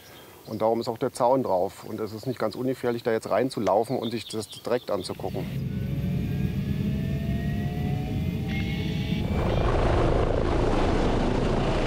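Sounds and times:
speech: 0:00.5 - 0:05.8
faint rising whine: 0:05.0 - 0:11.8
helicopter flying over a 110 kV high-voltage power line: 0:05.1 - 0:11.8.

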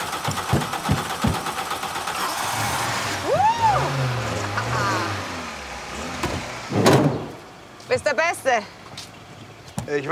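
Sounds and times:
car engine with a faulty fuel pump revving and idling roughly: 0:00.0 - 0:07.4
speech: 0:08.5 - 0:08.8, 0:09.9 - 0:10.1.

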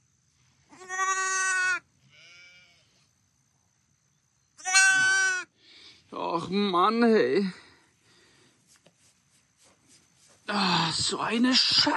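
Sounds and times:
injured lamb missing an eye bleating: 0:00.7 - 0:02.9, 0:04.6 - 0:05.5
speech: 0:06.4 - 0:07.6, 0:11.1 - 0:11.9.

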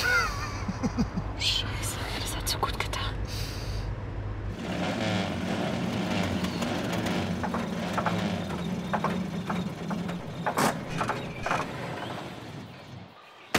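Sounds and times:
old bus engine rumbling: 0:00.0 - 0:13.2.

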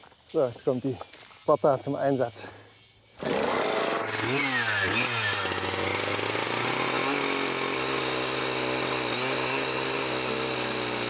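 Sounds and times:
speech: 0:00.3 - 0:02.6, 0:04.2 - 0:05.2
chainsaw of over 10 kilograms and 8.5 horsepower cutting saddle notches into a log: 0:03.2 - 0:11.0.

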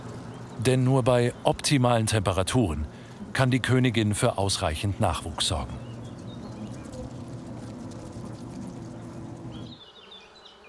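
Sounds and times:
many honey bees buzzing in a tree hollow: 0:00.0 - 0:10.6
speech: 0:00.6 - 0:05.8
faint bird chirps: 0:05.5 - 0:10.6.

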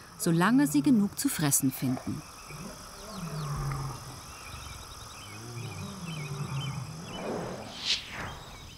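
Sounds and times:
birdsong: 0:00.0 - 0:08.7
insects chirping outdoors: 0:00.0 - 0:08.7
speech: 0:00.2 - 0:02.8
lion roaring: 0:02.5 - 0:04.2, 0:05.3 - 0:07.8.

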